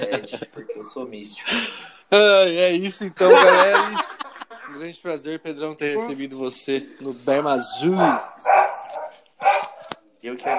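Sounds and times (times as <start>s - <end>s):
laughter: 0.0s - 1.9s, 2.8s - 5.0s
speech: 0.1s - 8.7s, 10.2s - 10.5s
dog barking: 7.5s - 10.5s.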